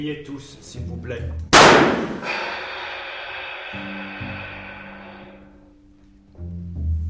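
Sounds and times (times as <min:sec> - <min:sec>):
speech: 0:00.0 - 0:02.6, 0:03.7 - 0:04.5
reproduced pistol gunshots: 0:01.6 - 0:02.6
low droning hum: 0:02.4 - 0:06.0.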